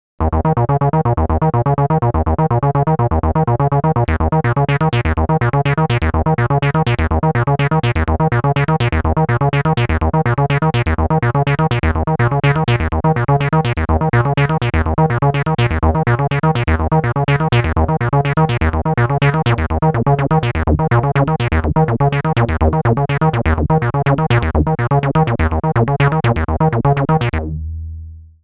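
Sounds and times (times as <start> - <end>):
synthesizer sound with filter amplitude LFO rate modulation: 0.2 - 28.2.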